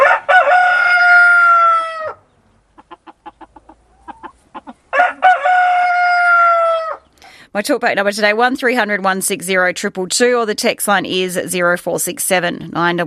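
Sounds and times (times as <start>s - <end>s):
rooster crowing: 0.0s - 2.2s, 4.9s - 7.1s
rooster clucking in short clucks: 0.0s - 7.2s
speech: 7.6s - 13.0s.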